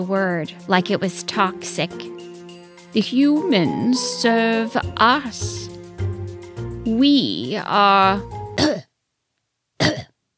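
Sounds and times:
speech: 0.0s - 2.3s, 2.9s - 5.7s, 6.9s - 8.7s
cat coughing up a hairball into a porcelain cup: 8.6s - 8.9s, 9.8s - 10.1s.

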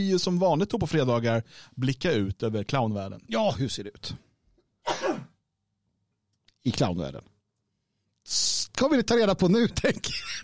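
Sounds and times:
speech: 0.0s - 4.2s, 6.6s - 7.3s, 8.2s - 10.4s
sneeze: 4.8s - 5.4s
laughter: 9.9s - 10.4s.

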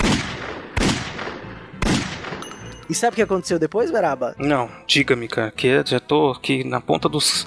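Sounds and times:
loud gunshots with booming decay: 0.0s - 2.4s
speech: 2.9s - 7.4s.

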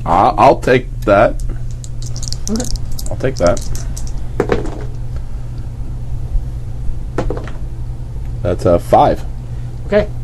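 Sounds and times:
speech: 0.0s - 1.5s, 2.5s - 3.9s, 8.4s - 9.3s, 9.9s - 10.2s
steady low hum: 0.0s - 10.2s
gambling dice rolled during a tabletop game: 1.4s - 4.9s.

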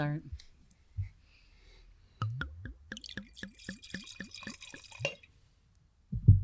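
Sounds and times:
speech: 0.0s - 0.4s
soft thuds: 1.0s - 1.2s
wine glugging from a bottle into a glass: 2.2s - 5.3s.

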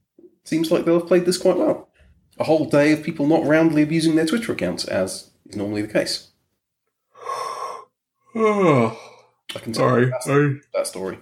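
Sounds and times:
speech: 0.5s - 6.3s, 8.4s - 11.2s
person yawning: 7.2s - 9.3s.

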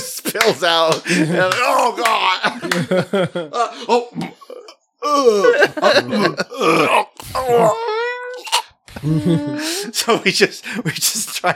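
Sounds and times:
laughter: 0.0s - 7.9s, 8.9s - 11.5s
speech: 0.4s - 4.4s, 5.1s - 8.0s, 9.0s - 11.5s
loud drawn-out groaning belches: 6.5s - 7.8s.

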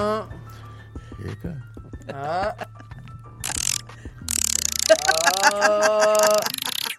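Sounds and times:
speech: 1.2s - 2.8s
laughter: 2.0s - 3.0s, 4.7s - 6.9s
person imitating a squirrel's chattering call: 3.5s - 6.9s.

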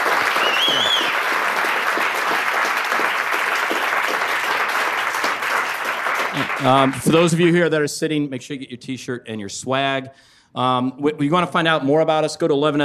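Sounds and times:
live audience applause in New York: 0.0s - 7.3s
audience whoop or whistle: 0.3s - 1.2s
speech: 6.6s - 12.8s.

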